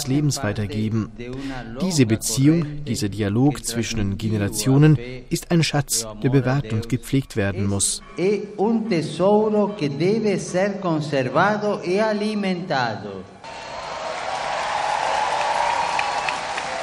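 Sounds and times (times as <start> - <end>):
speech: 0.0 - 13.6
large crowd applauding: 13.4 - 16.8.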